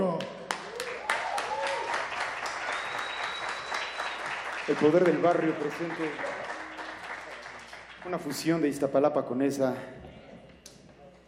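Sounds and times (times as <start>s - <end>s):
crowd applauding loudly for a band: 0.0s - 9.0s
faint cheering voices: 0.6s - 4.2s
sharp whistles: 2.6s - 4.4s
speech: 4.7s - 6.4s, 8.0s - 10.0s.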